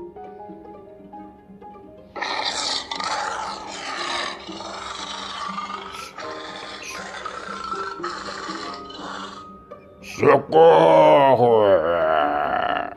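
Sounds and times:
soft music: 0.0s - 12.9s
lion roaring: 2.2s - 9.5s, 10.1s - 12.9s
speech: 10.2s - 12.0s.

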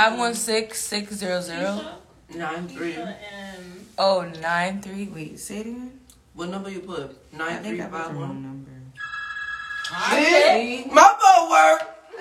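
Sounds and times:
speech: 0.0s - 8.7s, 9.9s - 12.1s
steady electronic telephone ring tone of an outgoing call: 9.0s - 10.1s.

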